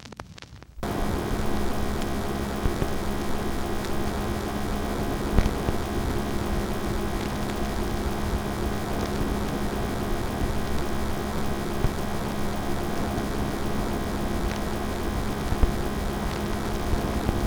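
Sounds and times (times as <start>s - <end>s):
ambience: 0.8s - 17.4s.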